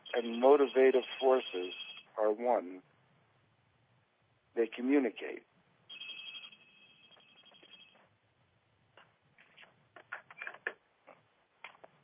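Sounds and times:
telephone ringing with electronic trill: 0.0s - 2.0s, 5.9s - 8.0s
speech: 0.2s - 2.9s, 4.6s - 5.5s.

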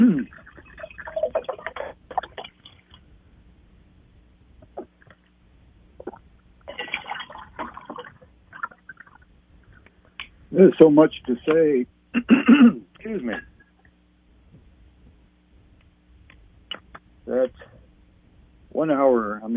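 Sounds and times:
water poured from a bottle into a glass: 0.2s - 1.6s, 6.7s - 9.3s
speech: 10.6s - 13.5s, 18.8s - 19.5s.

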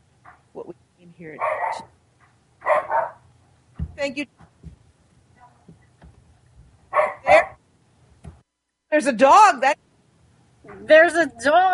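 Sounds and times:
speech: 1.2s - 1.9s, 4.0s - 4.4s, 9.0s - 9.8s, 10.8s - 11.7s
dog barking: 1.4s - 1.9s, 2.6s - 3.2s, 6.9s - 7.6s
dog yowling: 2.6s - 3.2s, 7.0s - 7.6s.

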